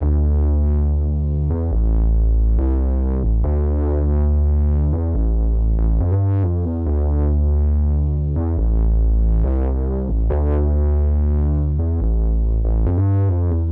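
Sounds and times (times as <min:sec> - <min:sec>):
synth bass in A minor: 0:00.0 - 0:13.6.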